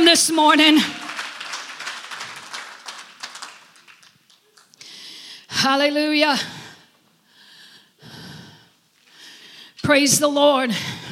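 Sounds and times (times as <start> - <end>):
speech: 0.1 - 1.0, 5.7 - 6.6, 9.8 - 11.0
amplified breathing into a loud microphone: 4.8 - 5.6, 6.3 - 9.8, 10.7 - 11.0.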